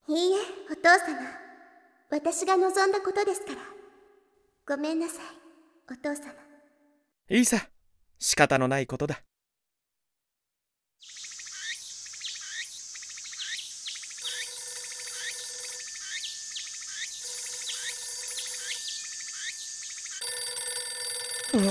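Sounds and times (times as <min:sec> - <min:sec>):
speech: 0:00.8 - 0:01.4, 0:02.1 - 0:03.8, 0:04.7 - 0:06.5, 0:07.3 - 0:09.3
steady high-pitched drone: 0:14.2 - 0:20.6
telephone ringing in repeated bursts: 0:14.2 - 0:21.6.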